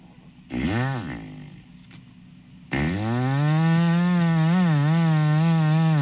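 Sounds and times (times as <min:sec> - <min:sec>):
man imitating a chainsaw with his mouth and palm: 0:00.5 - 0:01.6, 0:02.7 - 0:06.0.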